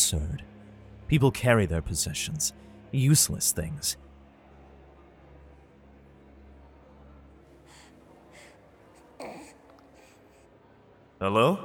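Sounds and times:
speech: 0.1s - 0.5s, 1.1s - 4.1s, 11.2s - 11.6s
wounded guardsman gasping for air in a church arch: 7.5s - 10.5s
faint breathy rasps: 7.5s - 10.6s.

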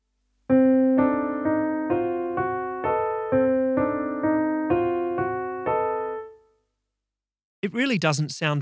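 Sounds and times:
solo piano playing a chordal accompaniment part: 0.5s - 6.5s
speech: 7.8s - 8.6s.

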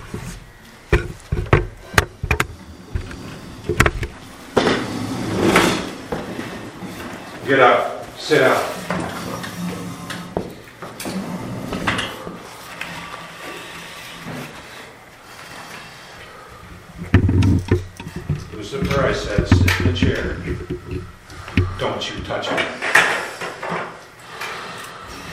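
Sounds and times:
thumps: 0.0s - 6.4s, 16.9s - 22.4s
table dragged across a hard floor: 0.0s - 16.0s, 17.0s - 21.8s
speech: 7.5s - 9.0s.

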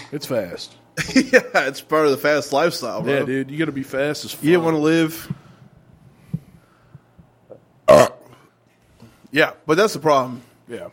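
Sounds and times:
speech: 0.1s - 5.4s, 9.3s - 10.9s
loud raspy burp: 7.8s - 8.4s.

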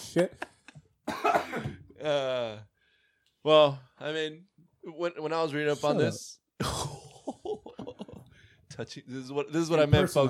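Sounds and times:
speech: 0.2s - 0.5s, 1.3s - 2.7s, 3.4s - 7.0s, 8.8s - 10.2s
harsh cough: 1.0s - 1.9s.

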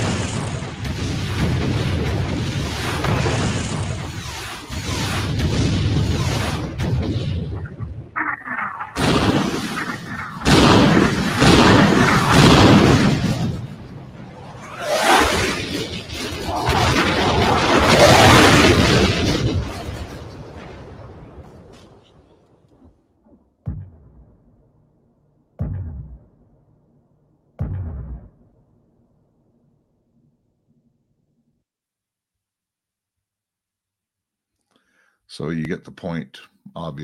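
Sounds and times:
missile accelerating to hypersonic speed: 0.0s - 22.6s
speech: 35.3s - 37.0s.

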